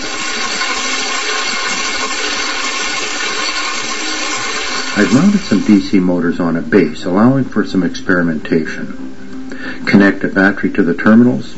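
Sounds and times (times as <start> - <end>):
falling water splashing onto a small model water wheel: 0.0 - 5.6
speech: 5.0 - 9.2, 9.9 - 11.5.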